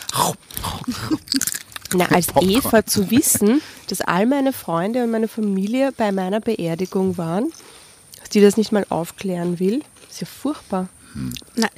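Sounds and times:
crunchy snack being chewed: 0.0 - 3.4, 9.0 - 11.7
speech: 0.2 - 7.7, 8.3 - 11.7.

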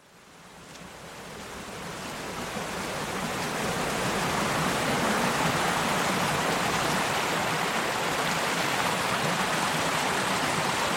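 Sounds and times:
little stream trickling down from the central highland of the Gower peninsula: 0.0 - 10.9.

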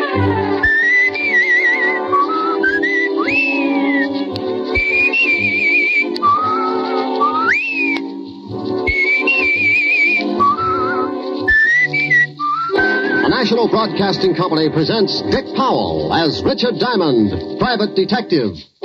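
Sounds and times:
steady instrumental accompaniment: 0.0 - 18.8
speech: 0.2 - 0.4, 13.8 - 18.8
man whistling a bright melodic tune: 0.6 - 8.1, 8.8 - 13.4.

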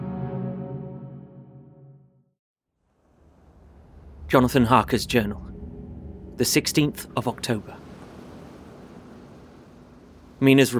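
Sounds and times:
water rushing: 2.9 - 10.7
waves lapping: 3.0 - 10.7
speech: 4.3 - 5.5, 6.4 - 7.8, 10.4 - 10.7.

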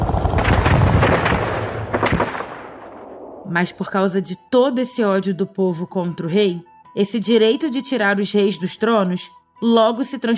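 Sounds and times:
dense barrage of gunfire: 0.0 - 3.5
heavy booming explosions: 0.0 - 3.5
speech: 3.5 - 10.3.

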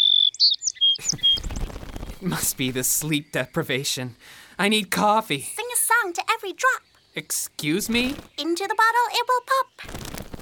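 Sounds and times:
bird chirping: 0.0 - 10.3
speech: 1.0 - 1.6, 2.2 - 10.0.

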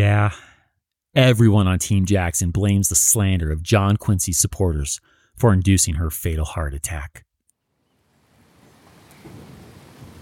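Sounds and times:
speech: 0.0 - 0.5, 1.2 - 7.3
light rain pattering outdoors: 8.1 - 10.2.

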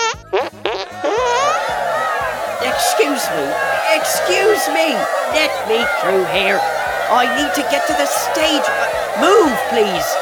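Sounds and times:
wet sputtering armpit fart sounds: 0.0 - 1.5
laughter: 0.8 - 10.2
speech: 3.2 - 10.2.

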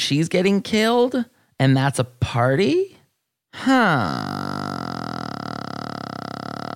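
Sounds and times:
speech: 0.1 - 2.9, 3.5 - 4.6
long burp: 3.6 - 6.7.

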